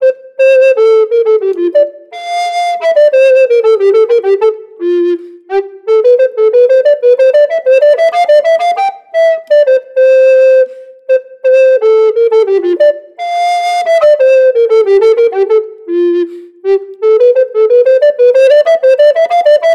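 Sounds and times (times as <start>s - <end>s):
Yamaha YRT 304 B II tenor recorder playing classical music: 0.0s - 19.7s.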